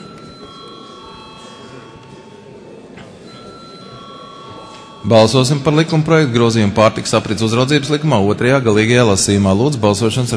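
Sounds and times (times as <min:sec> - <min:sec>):
electric bell ringing in a parliament chamber to call members to a vote: 0:00.0 - 0:07.7
faint murmur: 0:00.0 - 0:10.3
speech: 0:05.0 - 0:10.3.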